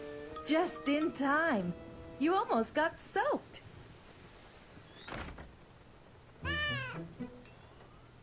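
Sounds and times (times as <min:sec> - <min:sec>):
speech: 0:00.5 - 0:03.7
cat meowing: 0:06.4 - 0:07.1.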